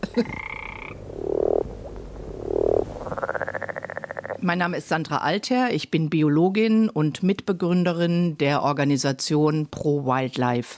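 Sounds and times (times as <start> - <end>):
red marbled toad throaty croaks: 0.0 - 4.6
steady chorus of noise: 0.0 - 4.8
speech: 0.1 - 0.6, 4.4 - 10.7.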